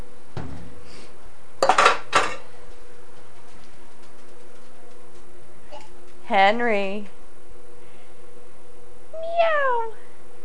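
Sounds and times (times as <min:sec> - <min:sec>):
steady low hum: 0:00.0 - 0:10.4
speech: 0:06.3 - 0:07.2
person imitating a cat meowing: 0:09.2 - 0:10.0.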